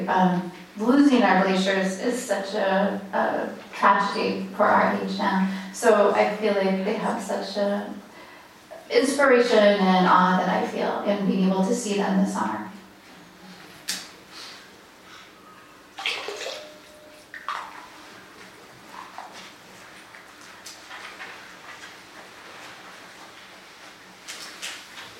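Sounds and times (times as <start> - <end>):
speech: 0.1 - 8.0, 8.9 - 12.6
river water from a branch of the Boulder River in Montana splashing: 16.0 - 16.7
river water trickling: 16.0 - 18.0.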